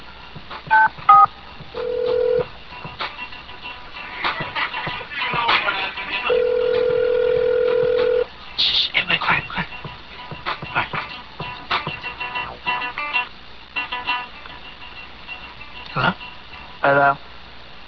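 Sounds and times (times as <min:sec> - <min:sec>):
busy background of noise: 0:00.0 - 0:17.8
touch-tone telephone dialing beeps: 0:00.7 - 0:02.4, 0:06.3 - 0:08.2.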